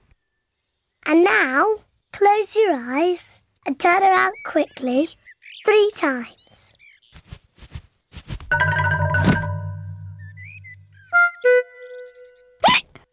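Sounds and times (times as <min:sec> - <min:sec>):
speech: 0:01.1 - 0:06.6
brief squeaky notes: 0:08.5 - 0:12.6
child hiccupping: 0:12.6 - 0:13.0.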